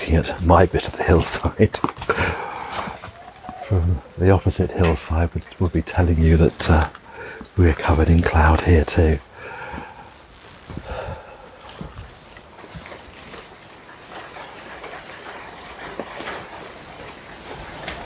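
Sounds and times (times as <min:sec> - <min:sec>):
steady rain falling on a hillside: 0:00.0 - 0:18.0
speech: 0:00.1 - 0:02.4, 0:03.7 - 0:07.0, 0:07.6 - 0:09.3.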